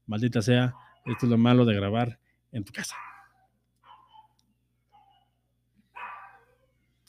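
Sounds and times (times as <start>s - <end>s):
speech: 0.1s - 3.1s
dogs barking with sharp yelping barks: 0.5s - 1.6s, 2.8s - 6.8s.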